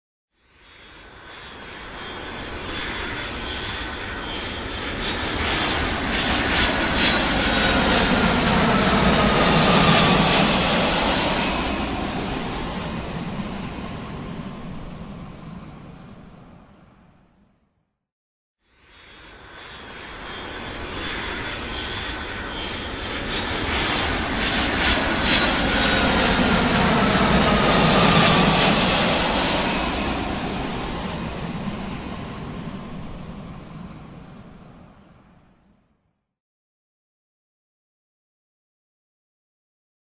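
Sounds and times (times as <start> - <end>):
airplane: 0.4 - 17.8, 18.6 - 36.3.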